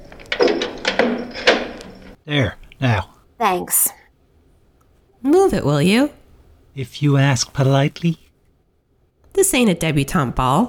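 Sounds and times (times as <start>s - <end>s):
door being unlocked and pushed open: 0.0s - 2.2s
speech: 2.3s - 4.0s, 5.2s - 6.2s, 6.8s - 8.2s, 9.4s - 10.6s.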